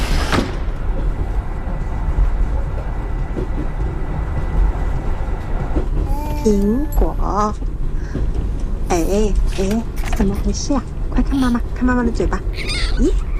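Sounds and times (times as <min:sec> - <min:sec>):
train arriving at a station: 0:00.0 - 0:13.3
speech: 0:06.4 - 0:13.2.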